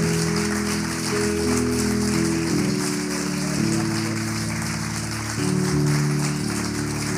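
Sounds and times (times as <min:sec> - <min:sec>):
audience applauding: 0:00.0 - 0:07.1.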